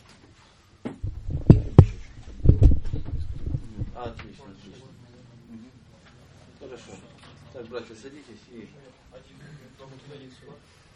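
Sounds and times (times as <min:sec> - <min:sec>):
door being handled and shut with dull wooden thuds and knocks: 0:01.0 - 0:04.2
speech: 0:06.6 - 0:10.9.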